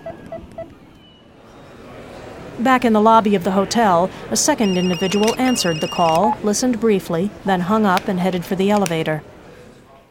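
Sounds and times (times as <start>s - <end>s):
faint low noise: 0.0s - 10.0s
speech: 2.6s - 9.3s
cell phone keypad beeps: 4.6s - 6.4s.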